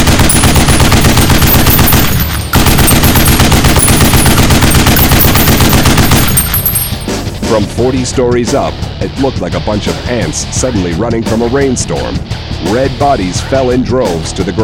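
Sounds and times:
7.62mm machine gun firing: 0.0 - 7.2
speech: 7.6 - 14.6.

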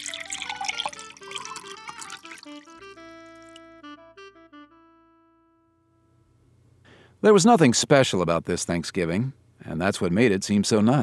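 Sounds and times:
drink pouring into a glass: 0.0 - 3.6
speech: 7.2 - 11.0.

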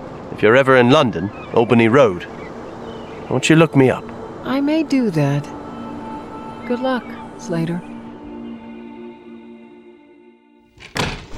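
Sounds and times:
sustained humming musical tone: 0.0 - 10.6
speech: 0.3 - 2.4, 3.3 - 5.6, 6.7 - 7.9
door opening: 10.7 - 11.3
latch and handle clunks: 10.8 - 11.3.

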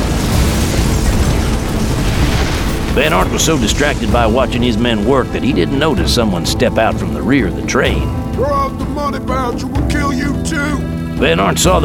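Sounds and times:
dynamite blast blowing open a train's express car door: 0.0 - 8.1
speech: 3.0 - 11.8.

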